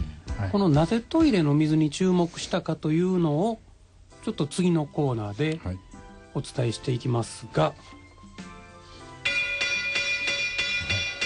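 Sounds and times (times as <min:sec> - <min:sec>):
speech: 0:00.4 - 0:08.5
bell being struck: 0:09.2 - 0:11.2.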